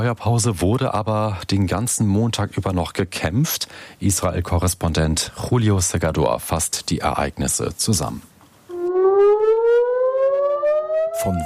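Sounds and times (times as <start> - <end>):
speech: 0.0 - 8.3, 11.2 - 11.4
warning sirens wailing in northern Israel: 8.7 - 11.4.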